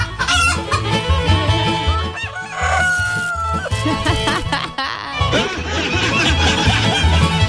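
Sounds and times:
flock of chickens clucking: 0:00.0 - 0:07.4
rooster crowing: 0:02.1 - 0:03.7
laughter: 0:03.4 - 0:07.4.

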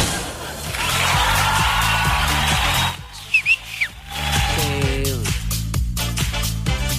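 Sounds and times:
busy music: 0:00.0 - 0:06.9
person whistling short sliding notes: 0:03.2 - 0:04.0.

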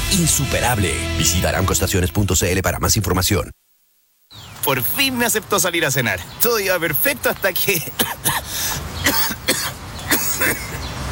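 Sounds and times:
speech: 0:00.1 - 0:03.6, 0:04.6 - 0:09.2
person coughing: 0:07.8 - 0:10.8.

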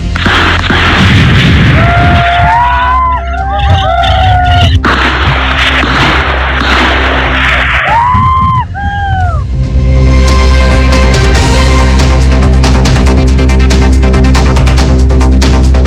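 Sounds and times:
gunfire during a police raid: 0:00.0 - 0:02.3, 0:04.7 - 0:07.9
loud rumbling outdoor background: 0:00.0 - 0:15.8
rising and falling wailing cries: 0:01.8 - 0:04.8, 0:07.8 - 0:09.4.

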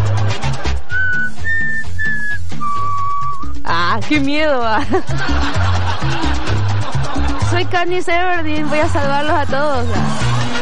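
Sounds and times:
person whistling a short tune: 0:00.9 - 0:03.6
speech: 0:04.0 - 0:06.2, 0:07.6 - 0:10.3
laughter: 0:04.7 - 0:10.5.

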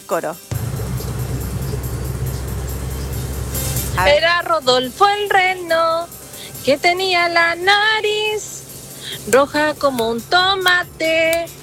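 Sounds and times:
speech: 0:00.1 - 0:00.6, 0:04.0 - 0:11.6
car engine rumble on the way to Riñigüe on Christmas Day: 0:00.5 - 0:11.6
road noise in a moving car cabin: 0:00.5 - 0:11.6.

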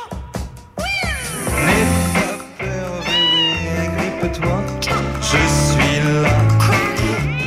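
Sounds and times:
music with sustained tones: 0:00.0 - 0:07.4
cat meowing: 0:03.0 - 0:03.7, 0:07.2 - 0:07.4.

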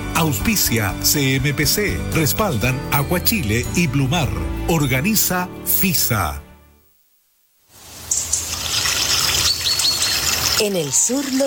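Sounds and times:
speech: 0:00.2 - 0:06.4, 0:10.6 - 0:11.4
water flowing: 0:07.7 - 0:11.4.

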